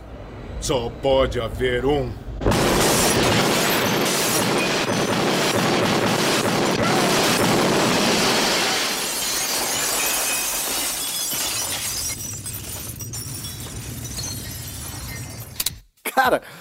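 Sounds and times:
speech: 0.6s - 2.6s
loud cinematic explosion roar: 2.2s - 10.2s
debris falling after an explosion: 2.4s - 15.6s
glass shattering in an explosion: 2.5s - 5.8s, 6.6s - 15.6s.

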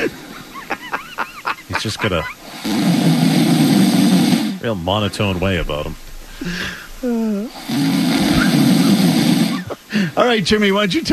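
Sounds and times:
laughter: 0.0s - 2.5s, 6.4s - 10.6s
person snoring: 1.7s - 10.2s
speech: 1.8s - 3.2s, 4.6s - 7.8s, 10.2s - 11.1s.

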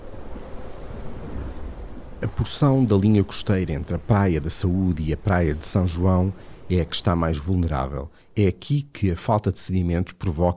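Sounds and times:
thunder rumble in a thunderstorm: 0.0s - 7.4s
rain hiss in a thunderstorm: 0.0s - 9.7s
speech: 2.2s - 10.5s.

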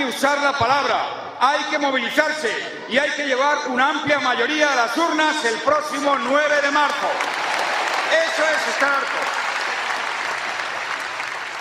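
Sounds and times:
speech: 0.1s - 7.4s, 8.1s - 9.2s
large crowd applauding at a political rally: 6.3s - 11.5s.

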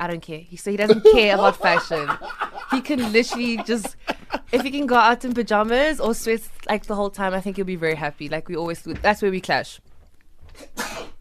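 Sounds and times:
speech: 0.0s - 9.9s, 10.6s - 11.0s
laughter: 0.9s - 4.9s
person sneezing: 10.6s - 11.2s.

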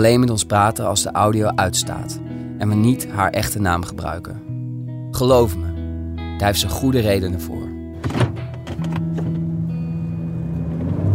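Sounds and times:
speech: 0.0s - 4.5s, 5.2s - 5.7s, 6.4s - 8.3s
brief clicks and thumps: 8.0s - 9.5s
car engine hum and road rumble heard inside a moving car: 8.0s - 11.1s.

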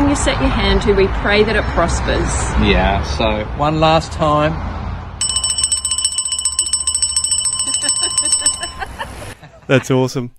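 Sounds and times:
speech: 0.2s - 4.8s, 9.7s - 10.3s
bicycle bell ringing: 5.2s - 9.0s
laughter: 7.6s - 10.1s.

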